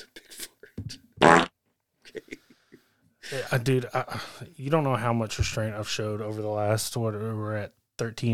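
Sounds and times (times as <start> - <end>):
fart sound effect from a soundboard button: 1.2 - 1.5
speech: 3.3 - 8.3.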